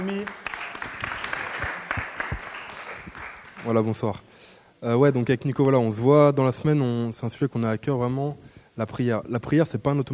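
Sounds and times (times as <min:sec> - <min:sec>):
speech: 0:00.0 - 0:00.5, 0:03.6 - 0:10.1
crowd applauding: 0:00.0 - 0:04.0.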